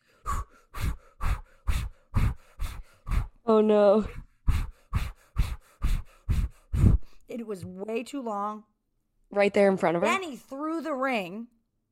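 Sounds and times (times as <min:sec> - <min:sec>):
man doing heavy rhythmic Lamaze-style breathing: 0:00.0 - 0:03.5, 0:04.1 - 0:07.2
speech: 0:03.5 - 0:04.2, 0:07.4 - 0:08.7, 0:09.3 - 0:11.6.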